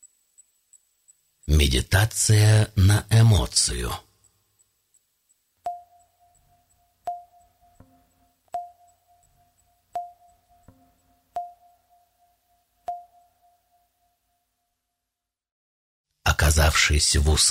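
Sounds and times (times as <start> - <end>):
speech: 1.5 - 4.1, 16.8 - 17.4
bell-like alarm ringtone chime: 5.7 - 14.2.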